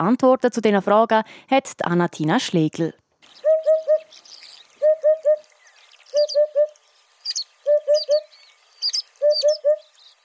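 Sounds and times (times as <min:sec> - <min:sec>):
speech: 0:00.0 - 0:03.0
small birds chirping faintly: 0:03.2 - 0:10.2
Eurasian hoopoe calling: 0:03.3 - 0:10.0.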